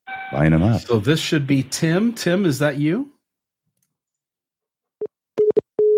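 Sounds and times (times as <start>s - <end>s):
phone line busy signal beeps after hang-up: 0.1s - 0.5s, 5.4s - 5.9s
speech: 0.3s - 3.2s.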